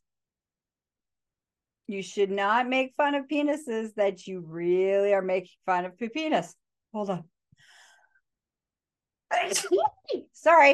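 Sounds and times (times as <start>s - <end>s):
speech: 1.9s - 7.7s, 9.4s - 10.7s
person sneezing: 9.3s - 9.9s.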